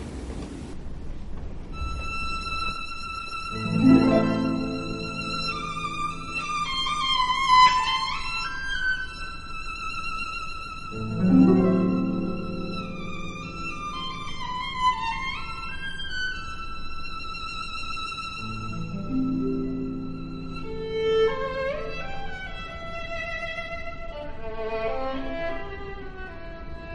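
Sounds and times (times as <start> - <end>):
harp accompaniment: 1.7 - 26.0
orchestral music with a sustained flowing melody: 3.3 - 9.3, 10.9 - 15.9, 18.5 - 25.5.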